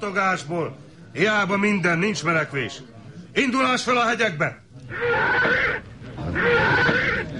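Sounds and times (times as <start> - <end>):
speech: 0.0 - 7.3
spooked horse squealing while bolting: 4.9 - 7.3.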